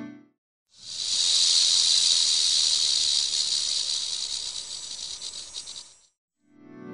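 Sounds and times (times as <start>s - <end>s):
timber rattlesnake rattling: 0.7s - 6.2s.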